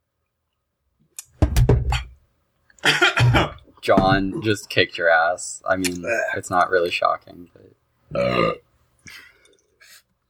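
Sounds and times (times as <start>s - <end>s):
loud burp after drinking stout: 2.8s - 3.6s, 8.1s - 8.6s
speech: 3.9s - 9.3s.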